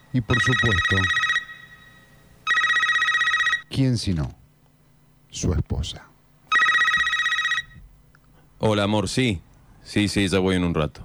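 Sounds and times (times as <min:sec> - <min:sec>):
speech: 0:00.1 - 0:01.2, 0:03.7 - 0:04.4, 0:05.3 - 0:06.1, 0:08.6 - 0:11.0
man's mobile phone ringtone ringing: 0:00.3 - 0:03.7, 0:06.5 - 0:07.8.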